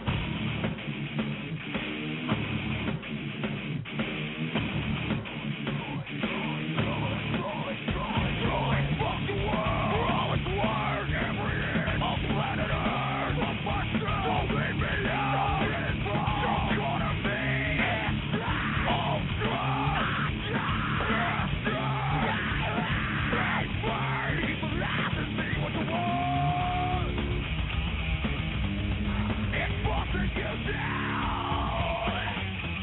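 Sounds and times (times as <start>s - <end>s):
driving distorted guitar: 0.0s - 32.8s
rock drums: 0.0s - 32.8s
raw screamed vocals in live rock performance: 5.8s - 27.2s, 29.1s - 32.4s.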